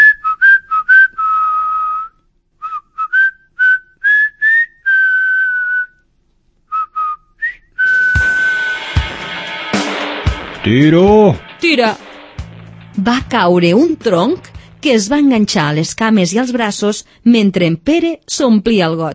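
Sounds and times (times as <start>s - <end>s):
person whistling a lively tune: 0.0s - 6.0s, 6.7s - 8.8s
speech: 10.7s - 12.1s, 13.0s - 19.1s.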